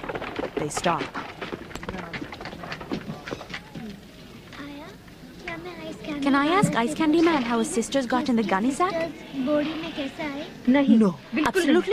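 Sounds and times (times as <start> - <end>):
horse hooves clip-clopping pulling a cart: 0.0 - 9.0
speech: 0.6 - 1.2, 5.9 - 11.9.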